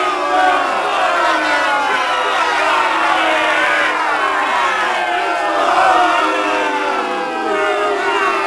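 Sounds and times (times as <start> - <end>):
small crowd booing: 0.0 - 8.4.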